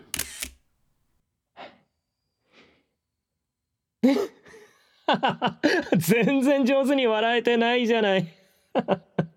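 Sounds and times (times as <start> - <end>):
camera shutter clicks taking a wedding photo: 0.1 - 1.0
speech: 4.0 - 4.3, 5.1 - 9.1.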